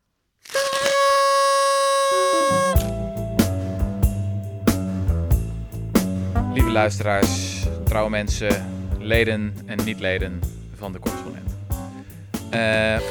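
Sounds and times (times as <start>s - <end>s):
small horn tooting one long wavering note: 0.5s - 2.8s
thumping rhythmic beat with sharp percussive hits: 2.2s - 12.0s
speech: 6.7s - 11.5s, 12.5s - 13.0s.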